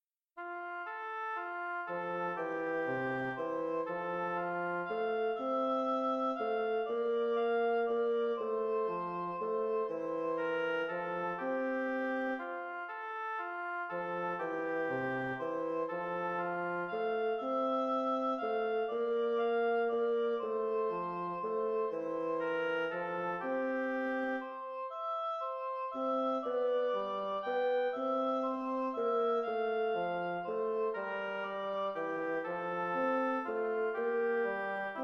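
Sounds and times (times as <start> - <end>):
bassoon playing allegretto: 0.4 - 35.0
oboe playing allegretto: 0.4 - 35.0.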